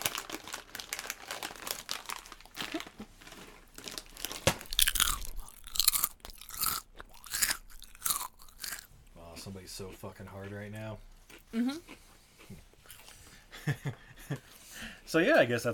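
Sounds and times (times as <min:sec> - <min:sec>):
chewing crunchy Thai chips: 0:00.1 - 0:10.6, 0:11.3 - 0:13.3
speech: 0:09.8 - 0:12.7, 0:15.1 - 0:15.7.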